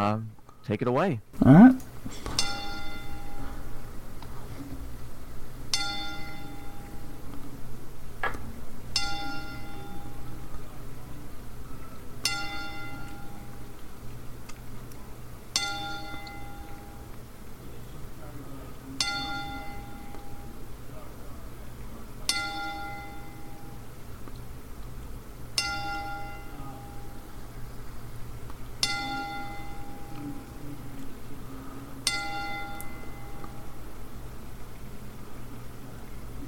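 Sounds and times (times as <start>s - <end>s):
speech: 0.0s - 2.3s
low steady hum: 0.0s - 36.4s
bell tolling in a ten-bell salute: 2.4s - 3.6s, 5.7s - 7.1s, 9.0s - 10.3s, 12.2s - 13.5s, 15.6s - 17.0s, 19.0s - 20.6s, 22.3s - 23.7s, 25.6s - 27.2s, 28.8s - 30.5s, 32.0s - 33.7s.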